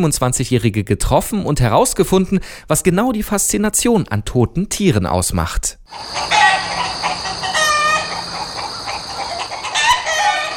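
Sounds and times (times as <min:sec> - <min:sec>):
speech: 0:00.0 - 0:06.4
flock of hens clucking excitedly in front of a workshop: 0:05.9 - 0:10.5.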